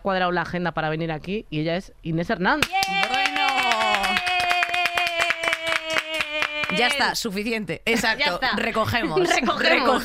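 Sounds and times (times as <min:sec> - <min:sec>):
speech: 0:00.0 - 0:03.1, 0:06.7 - 0:10.0
a few people clapping: 0:02.6 - 0:07.2
laughter: 0:09.0 - 0:10.0.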